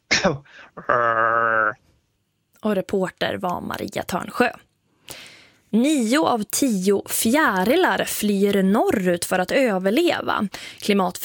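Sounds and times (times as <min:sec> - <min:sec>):
speech: 0:00.2 - 0:01.9, 0:02.6 - 0:11.2
man imitating a monkey call with cough-like bark and roaring howl: 0:00.8 - 0:01.8.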